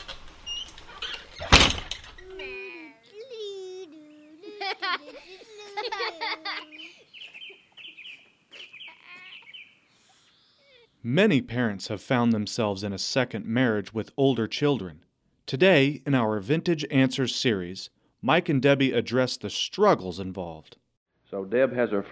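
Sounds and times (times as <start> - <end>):
door shutting with a loud sharp thud: 0.0 - 2.3
laughter: 3.1 - 9.5
speech: 5.0 - 6.8, 11.0 - 22.1.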